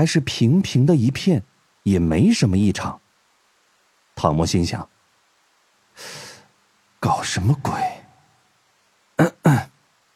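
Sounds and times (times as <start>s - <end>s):
speech: 0.0s - 3.0s, 4.2s - 5.0s, 7.0s - 7.9s
man coughing: 9.2s - 9.8s.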